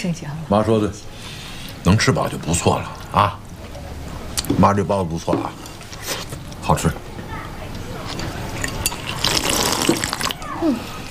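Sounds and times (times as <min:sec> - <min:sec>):
speech: 0:00.0 - 0:01.2, 0:01.8 - 0:03.4, 0:04.5 - 0:05.6, 0:06.7 - 0:07.0, 0:10.6 - 0:11.0
running tap water at a sink as hands are washed: 0:08.3 - 0:10.4.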